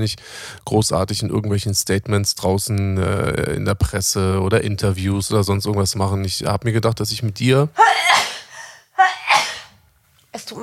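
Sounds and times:
speech: 0.0 - 8.3
person sneezing: 7.8 - 9.8.

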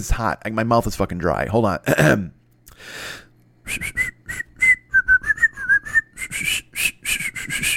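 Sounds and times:
speech: 0.0 - 4.1
sharp intake of breath: 2.7 - 3.3
person whistling a short wavering tune: 3.7 - 7.7.

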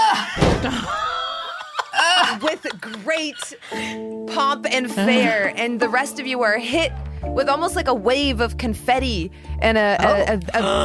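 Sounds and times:
laughter: 0.0 - 3.7, 5.0 - 5.5
heavy double doors swinging open and banging: 0.4 - 1.2
speech: 0.6 - 1.0, 2.3 - 10.8.

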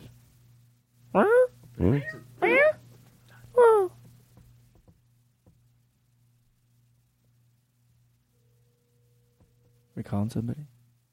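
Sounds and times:
faint steady hum: 0.0 - 11.1
speech: 1.2 - 2.3, 10.2 - 10.7
cat meowing: 1.8 - 2.8.

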